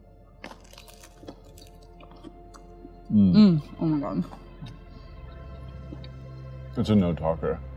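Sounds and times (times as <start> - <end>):
crunchy chewing of a BLT sandwich with aioli: 0.4 - 3.0
speech: 3.1 - 4.4, 6.8 - 7.7.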